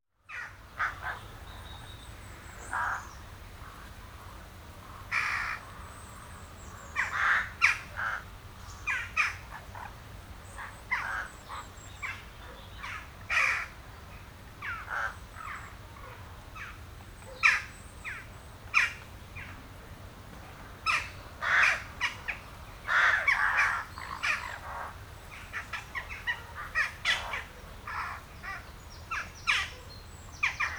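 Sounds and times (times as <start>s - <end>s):
crows: 0.3s - 1.3s, 2.6s - 3.9s, 4.8s - 5.8s, 6.7s - 8.3s, 8.9s - 9.9s, 10.6s - 12.2s, 12.8s - 13.8s, 14.6s - 19.5s, 20.8s - 30.7s.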